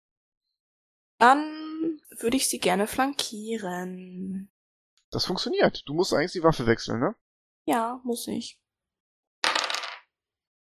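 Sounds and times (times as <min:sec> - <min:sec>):
speech: 0:01.2 - 0:08.6
twenty-sided die rolling: 0:09.4 - 0:10.1.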